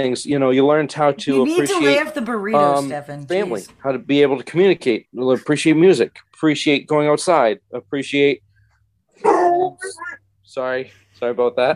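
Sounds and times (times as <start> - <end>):
speech: 0.0 - 8.5, 9.2 - 11.7
dog barking: 9.2 - 9.9.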